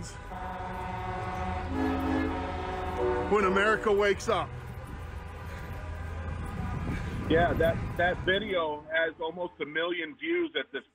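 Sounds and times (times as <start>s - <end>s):
many car horns honking in street: 0.0s - 8.3s
low rumble of traffic: 0.0s - 10.2s
speech: 3.3s - 4.6s, 7.3s - 10.9s.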